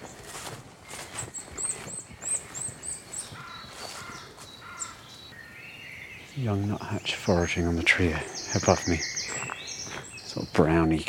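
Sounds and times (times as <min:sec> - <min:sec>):
footsteps crunching: 0:00.0 - 0:05.4, 0:08.6 - 0:11.0
birds calling: 0:00.0 - 0:11.0
wood warbler singing: 0:00.0 - 0:11.0
speech: 0:06.4 - 0:09.2, 0:10.4 - 0:11.0.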